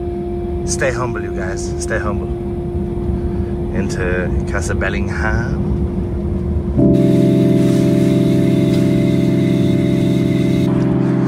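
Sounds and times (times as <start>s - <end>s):
heavy underpowered lorry engine driving into Castle Bellingham in Ireland: 0.0s - 11.2s
speech: 0.7s - 2.5s, 3.8s - 5.8s.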